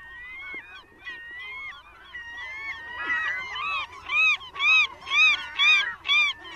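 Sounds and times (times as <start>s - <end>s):
glaucous-winged gulls calling at a nesting colony on Protection Island: 0.0s - 6.5s.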